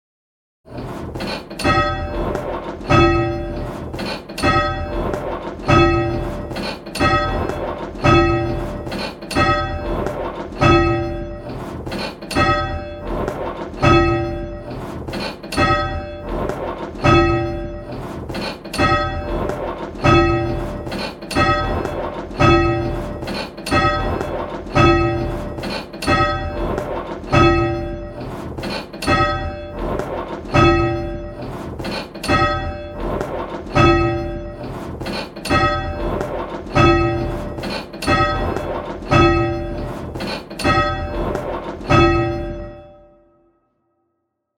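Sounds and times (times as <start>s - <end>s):
bells: 1.6s - 43.1s.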